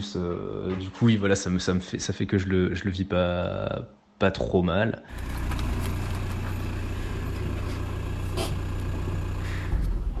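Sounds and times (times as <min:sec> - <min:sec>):
speech: 0:00.0 - 0:05.5
car engine rumbling as the car pulls in: 0:05.1 - 0:10.1.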